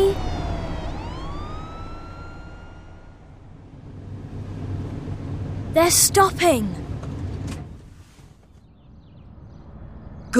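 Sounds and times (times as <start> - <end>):
fire engine siren wailing: 0.0 - 3.7
low rumble of traffic or engine noise: 0.0 - 10.3
speech: 5.8 - 6.8.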